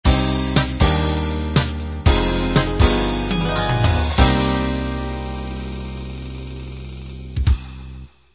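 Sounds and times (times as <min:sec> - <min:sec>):
half-time eight and sixteen drum beat ending: 0:00.1 - 0:04.8.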